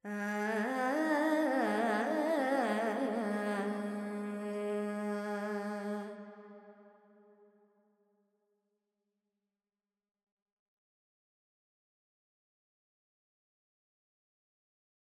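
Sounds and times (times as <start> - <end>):
Carnatic woman singing alap in raga Purvi Kalyani with reverb: 0.0 - 6.3.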